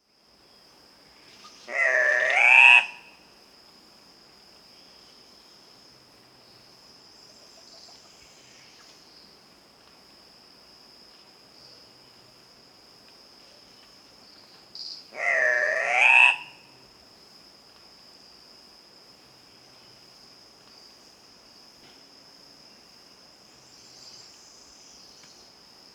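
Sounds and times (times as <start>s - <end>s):
Andean cock-of-the-rock Rupicola peruvianus calling: 1.6s - 3.1s, 15.1s - 16.7s.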